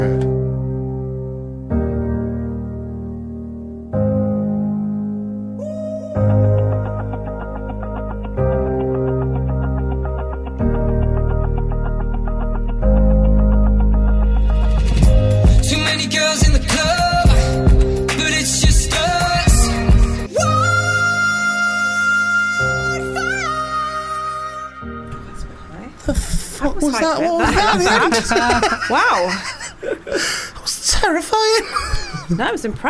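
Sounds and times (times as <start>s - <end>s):
synth music track with sustained chords and crashing texture: 0.0s - 26.0s
laughter: 27.0s - 30.4s
speech: 27.8s - 29.5s, 31.0s - 32.8s.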